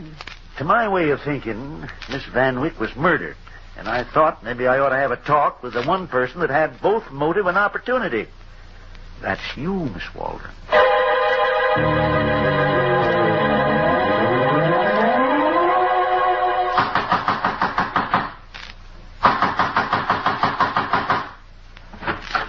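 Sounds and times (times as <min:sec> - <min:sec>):
speech: 0:00.2 - 0:08.4, 0:09.2 - 0:10.8, 0:11.7 - 0:13.2
wavering siren-like tone: 0:10.7 - 0:16.8
loud rapid pounding on a door: 0:16.8 - 0:18.4, 0:19.2 - 0:21.4.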